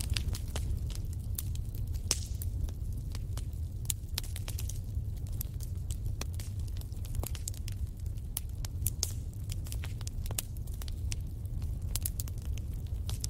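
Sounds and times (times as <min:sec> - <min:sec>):
wood fire crackling and popping: 0:00.0 - 0:13.2.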